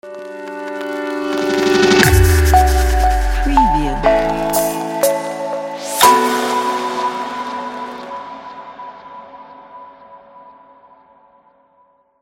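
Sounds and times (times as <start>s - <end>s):
minimalistic logo jingle: 2.0s - 7.0s.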